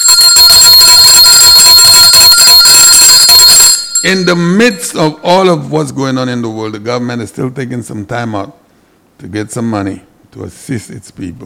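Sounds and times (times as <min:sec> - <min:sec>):
loud bell ringing with a rapid clattering shimmer: 0:00.0 - 0:05.7
speech: 0:04.0 - 0:08.6, 0:09.2 - 0:11.4.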